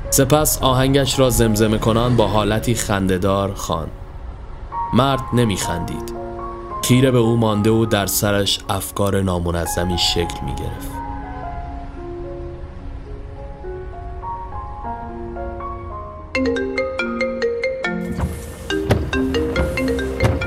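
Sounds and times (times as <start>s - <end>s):
low steady rumble: 0.0s - 16.3s
soft music: 0.0s - 20.4s
speech: 0.1s - 4.0s, 4.9s - 6.2s, 6.8s - 11.0s
bright melodic phone ringtone: 16.4s - 20.4s.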